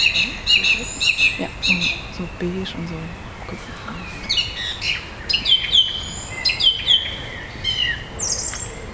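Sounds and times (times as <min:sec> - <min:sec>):
thrush singing: 0:00.0 - 0:07.0
soft hiss of outdoor noise: 0:00.0 - 0:08.9
speech: 0:02.4 - 0:04.1.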